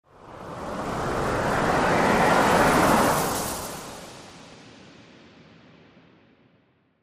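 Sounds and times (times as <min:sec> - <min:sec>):
organic wind sweep: 0:00.2 - 0:04.5.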